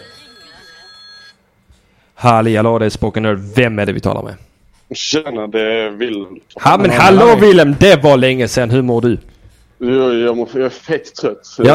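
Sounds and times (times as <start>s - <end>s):
telephone ringing with bright electronic tones: 0.0s - 1.5s
speech: 2.2s - 11.7s.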